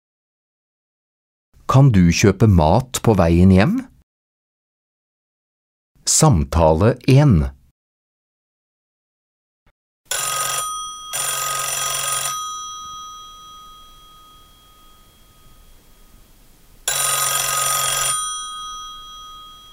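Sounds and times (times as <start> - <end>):
speech: 1.7 - 3.9, 6.1 - 7.6
telephone ringing with electronic trill: 10.1 - 16.0, 16.8 - 19.7.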